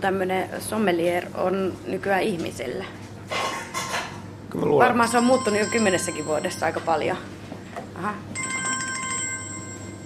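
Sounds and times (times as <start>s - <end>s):
speech: 0.0s - 3.4s, 4.6s - 7.4s, 8.0s - 8.4s
low hum: 0.0s - 10.0s
telephone ringing with a fast trilling electronic bell: 5.1s - 7.0s, 8.3s - 10.0s.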